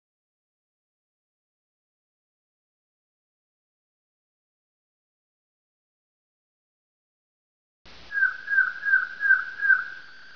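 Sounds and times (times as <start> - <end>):
ambience: 7.9 - 10.3
gull calling: 8.1 - 10.3.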